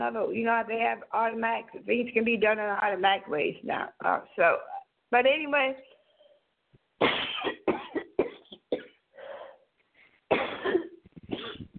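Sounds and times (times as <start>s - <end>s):
speech: 0.0s - 5.9s
harsh coughing fit: 7.0s - 9.0s, 10.3s - 11.7s.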